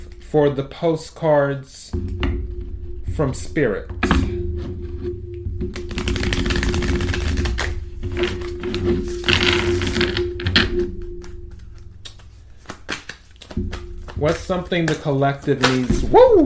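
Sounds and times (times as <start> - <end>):
speech: 0.3 - 2.3, 3.2 - 4.8, 14.2 - 16.4
tarot cards being shuffled: 5.8 - 10.2, 11.5 - 16.2.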